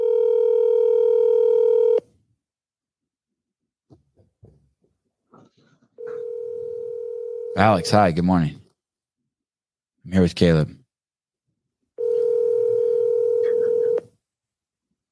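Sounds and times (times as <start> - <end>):
FaceTime video call ringing tone from a phone: 0.0 - 2.0, 6.0 - 8.1, 12.0 - 14.1
speech: 7.6 - 8.6, 10.0 - 10.8.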